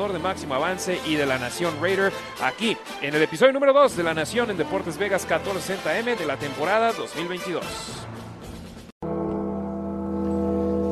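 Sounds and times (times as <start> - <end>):
speech: 0.0 - 8.1
deep bell tolling in a rock song intro: 9.0 - 10.9.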